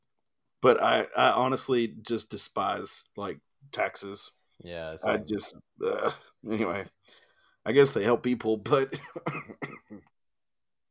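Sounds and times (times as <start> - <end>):
speech: 0.6 - 10.1
stifled cough: 8.9 - 10.0.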